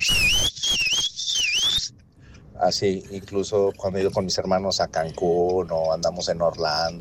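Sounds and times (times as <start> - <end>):
person whistling a family call signal: 0.0 - 1.9
speech: 2.6 - 6.9.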